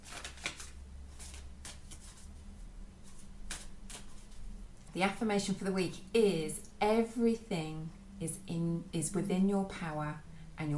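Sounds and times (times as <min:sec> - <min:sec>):
deck of cards shuffled to pick an affirmation: 0:00.0 - 0:02.4, 0:03.0 - 0:04.6
low steady hum: 0:00.0 - 0:10.7
speech: 0:05.0 - 0:10.7.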